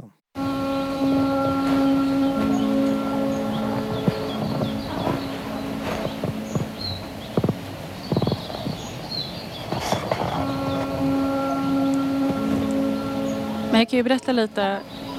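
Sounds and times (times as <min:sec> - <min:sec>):
sustained droning music track with layered tones: 0:00.4 - 0:15.1
creaks and knocking clicks: 0:03.9 - 0:08.8, 0:09.7 - 0:11.0
speech: 0:13.9 - 0:15.0.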